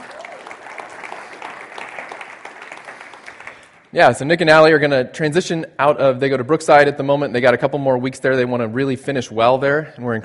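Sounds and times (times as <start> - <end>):
crowd applauding: 0.0 - 3.9
speech: 3.9 - 10.2.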